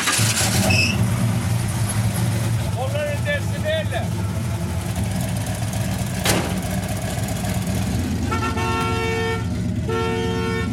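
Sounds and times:
brief high-pitched squeal: 0.0 - 1.1
Chrysler car engine starting and idling: 0.0 - 10.7.

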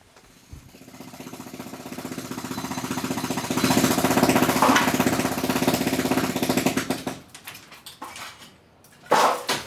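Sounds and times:
jackhammer pounding concrete demolishing a house roof: 0.3 - 7.3.

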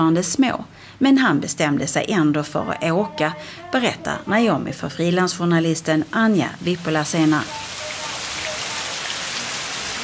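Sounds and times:
speech: 0.0 - 7.8
heavy rain falling outside during a sudden downpour in Sri Lanka: 5.8 - 10.0.

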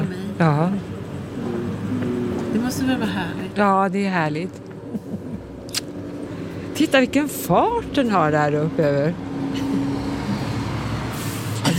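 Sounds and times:
bus driving past with low engine drone: 0.0 - 11.7
speech: 0.4 - 0.9, 2.5 - 5.1, 6.8 - 9.3
brief hiss of air from a bus: 11.1 - 11.7.

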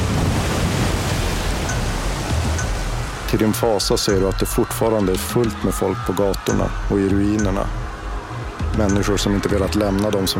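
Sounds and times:
huge foaming wave crashing in over land: 0.0 - 4.7
speech: 3.3 - 7.8, 8.8 - 10.3.

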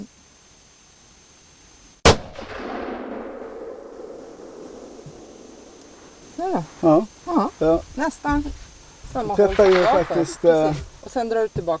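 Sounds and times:
rifle shot at a moose target on a shooting range: 2.0 - 6.0, 9.4 - 10.9
long rolling echo across the open range: 2.1 - 6.5, 9.1 - 11.2
speech: 6.4 - 8.6, 9.2 - 11.7.

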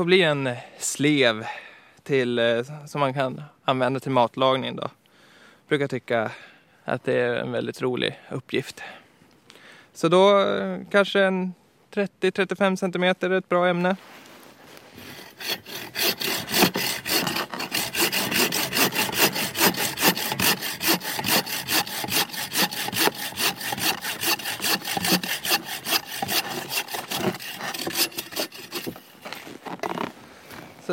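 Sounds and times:
speech: 0.0 - 5.0, 5.7 - 9.0, 10.0 - 14.2, 15.4 - 16.3
handsaw cutting straight across a piece of wood: 15.0 - 30.1.

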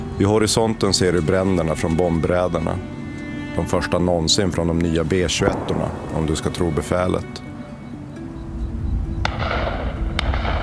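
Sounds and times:
speech: 0.2 - 3.0, 3.6 - 7.5
gunfire salvos at night on the outskirts of Urmia after bombing raids: 9.2 - 10.6.

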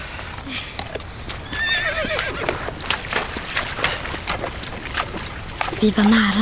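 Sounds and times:
constant rushing background: 0.0 - 6.4
horse hooves clip-clopping as horses are led to a river: 0.0 - 6.4
speech: 0.5 - 0.8, 5.8 - 6.4
horse whinnying: 1.4 - 2.8.

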